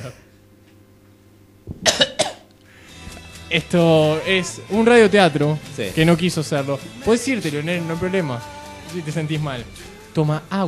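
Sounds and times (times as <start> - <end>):
speech: 0.0 - 0.3, 3.5 - 10.6
person coughing in a corner of a room: 1.7 - 2.5.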